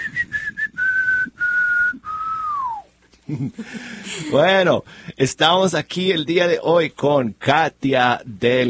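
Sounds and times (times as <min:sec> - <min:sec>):
person whistling a short tune: 0:00.0 - 0:02.9
speech: 0:03.3 - 0:08.6.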